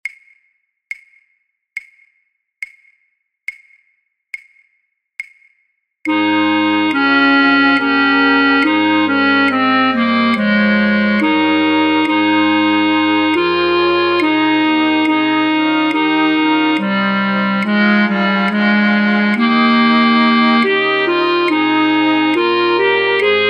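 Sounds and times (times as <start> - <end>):
alto flutes playing in a flute choir: 6.1 - 23.4.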